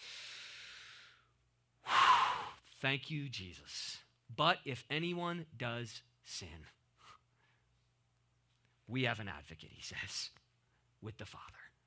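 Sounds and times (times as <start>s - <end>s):
deep breath taken during a sermon: 0.0s - 2.6s
speech: 2.8s - 6.8s, 8.9s - 10.4s, 11.0s - 11.6s.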